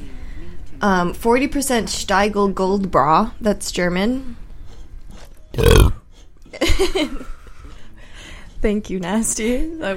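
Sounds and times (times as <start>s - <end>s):
speech: 0.8s - 4.4s, 5.6s - 5.9s, 6.8s - 7.3s, 8.6s - 9.9s
drawn-out croaky gurgling belch: 5.6s - 6.0s
loud burp: 5.6s - 6.0s.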